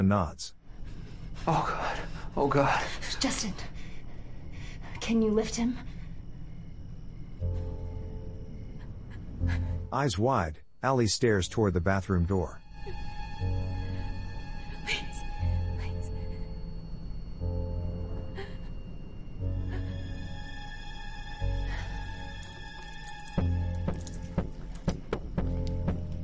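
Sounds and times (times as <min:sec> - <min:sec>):
steady low droning background: 0:00.0 - 0:26.2
speech: 0:00.1 - 0:00.6, 0:01.4 - 0:03.8, 0:05.0 - 0:05.9, 0:09.4 - 0:13.8
keys jangling while unlocking handcuffs: 0:22.0 - 0:25.2
light metallic clinks and rattles: 0:22.3 - 0:25.2.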